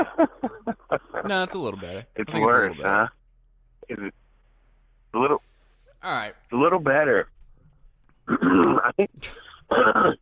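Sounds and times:
speech: 0.0s - 3.2s, 3.9s - 4.2s, 5.2s - 7.3s, 8.3s - 10.2s
person clearing throat in rough gravelly bursts: 8.3s - 10.2s.

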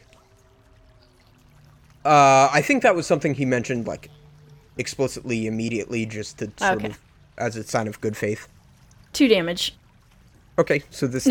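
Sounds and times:
ale pouring from a mug: 0.0s - 11.2s
speech: 2.0s - 4.2s, 4.8s - 8.6s, 9.2s - 9.8s, 10.6s - 11.2s.

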